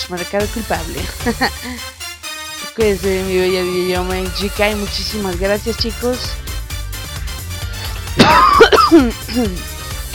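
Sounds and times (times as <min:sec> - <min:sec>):
speech: 0:00.1 - 0:02.0, 0:02.8 - 0:06.4, 0:08.2 - 0:09.7
person clearing throat: 0:08.2 - 0:09.4
person with a lingering cough coughing: 0:08.2 - 0:09.6.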